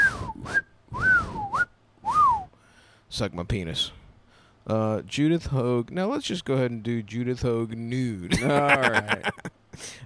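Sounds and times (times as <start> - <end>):
small whistle blown: 0.0 - 2.6
speech: 3.1 - 4.0, 4.6 - 10.0
laughter: 8.3 - 9.5.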